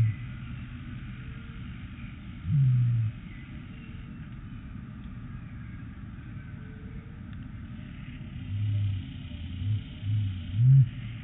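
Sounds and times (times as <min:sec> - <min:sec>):
faint constant hum: 0:00.0 - 0:11.2
Blue-billed curassow Crax alberti producing low droning booms: 0:02.5 - 0:03.2, 0:08.2 - 0:11.2.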